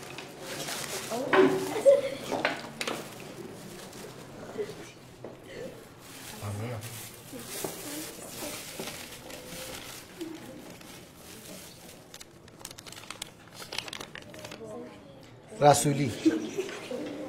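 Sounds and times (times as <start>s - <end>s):
paper slips put into a plastic bag for a prize draw: 0.0s - 4.9s, 5.8s - 14.6s
speech: 15.6s - 16.6s.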